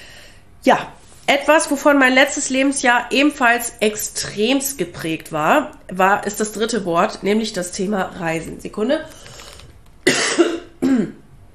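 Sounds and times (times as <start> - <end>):
speech: 0.6 - 9.3
person coughing: 10.0 - 11.3.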